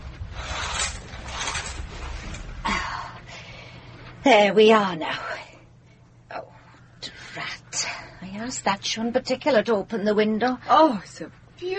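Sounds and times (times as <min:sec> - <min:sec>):
curtains being drawn back: 0:00.3 - 0:02.5
speech: 0:04.2 - 0:05.3, 0:08.4 - 0:11.7.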